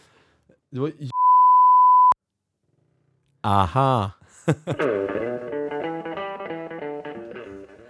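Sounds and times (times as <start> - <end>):
speech: 0.7 - 1.2, 3.4 - 5.3
censor bleep pure tone covering a name: 1.1 - 2.2
burst of speech: 3.5 - 4.2
laughter: 3.5 - 4.9.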